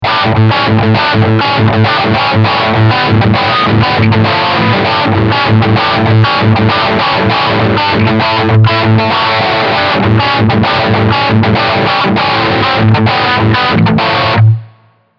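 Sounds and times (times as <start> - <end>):
overdriven guitar riff through a humbucker pickup: 0.0 - 15.1.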